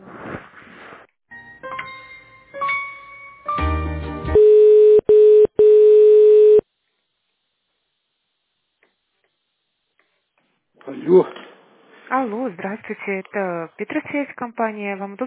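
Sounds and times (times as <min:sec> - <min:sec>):
electronic telephone beeps at changing pitches while a call is transferred: 0:04.4 - 0:06.6
speech: 0:11.2 - 0:11.4, 0:12.9 - 0:15.2.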